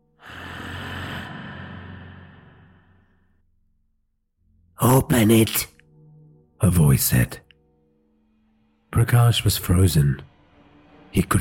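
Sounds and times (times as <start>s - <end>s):
raspy wheezing breath close to a man's ear in a horror scene: 0.2s - 3.2s
speech: 4.9s - 5.7s, 6.6s - 7.4s, 8.9s - 10.3s, 11.1s - 11.3s.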